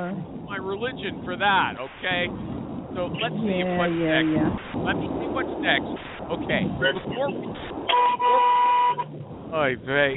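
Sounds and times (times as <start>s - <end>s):
speech: 0.0s - 8.5s, 9.5s - 10.1s
voices talking: 0.0s - 8.6s, 9.5s - 10.1s
rumbling traffic heard through an open car window: 0.0s - 10.1s
car horn blasts heard through an open car window: 7.8s - 9.2s.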